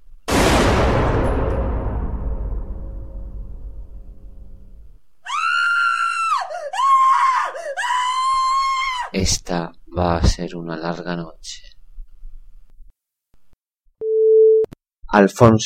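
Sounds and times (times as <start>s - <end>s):
gunshot: 0.3s - 5.0s
woman screaming: 5.2s - 9.2s
speech: 9.2s - 11.7s, 15.1s - 15.6s.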